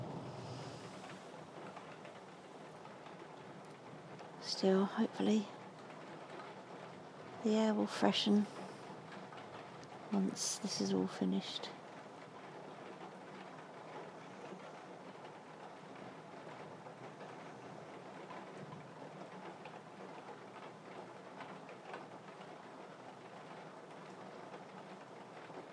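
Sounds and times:
heavy rain pouring outside: 0.0 - 25.7
speech: 4.4 - 5.6, 7.4 - 8.6, 10.1 - 11.8.

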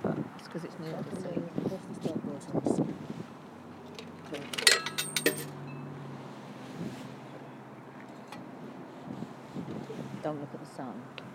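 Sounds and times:
outdoor wind buffeting against the microphone: 0.0 - 4.4, 6.6 - 7.7, 8.4 - 11.3
speech: 0.5 - 3.3, 4.3 - 5.6, 10.2 - 11.3
sharp metallic clinks: 4.4 - 6.0.

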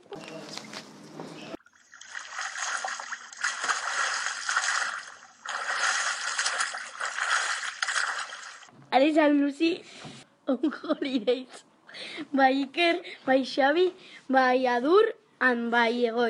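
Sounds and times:
flood water splashing and churning: 1.6 - 8.7
speech: 9.0 - 16.2.

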